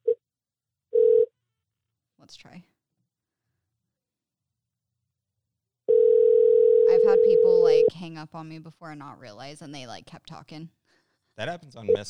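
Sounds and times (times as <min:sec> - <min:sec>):
outgoing phone call ringback tones: 0:01.0 - 0:01.3, 0:05.9 - 0:07.9
speech: 0:02.3 - 0:02.8, 0:08.0 - 0:10.8, 0:11.4 - 0:12.0.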